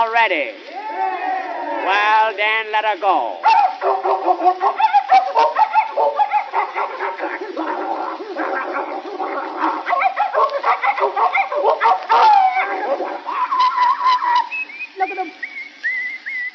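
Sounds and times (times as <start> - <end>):
speech: 0.0 - 1.2, 1.8 - 6.2, 14.0 - 15.4
dogs snarling, yelping and barking in a scuffle: 3.4 - 14.5
whistle: 13.5 - 16.5.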